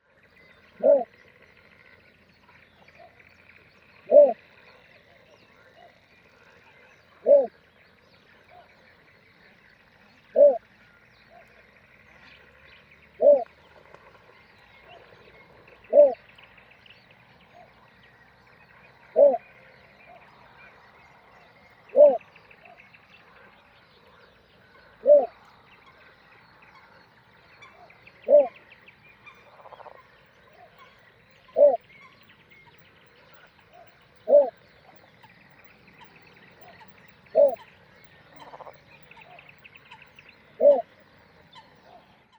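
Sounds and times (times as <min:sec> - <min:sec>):
little bittern Ixobrychus minutus calling: 0:00.4 - 0:01.3, 0:02.8 - 0:06.0, 0:07.0 - 0:07.6, 0:10.2 - 0:11.4, 0:13.1 - 0:13.5, 0:14.8 - 0:16.6, 0:19.0 - 0:20.8, 0:21.5 - 0:42.1.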